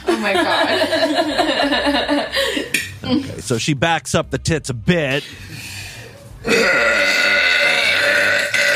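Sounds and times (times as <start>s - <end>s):
laughter: 0.1s - 2.7s
speech: 3.1s - 5.6s, 6.4s - 7.0s
woman burping: 6.4s - 8.7s.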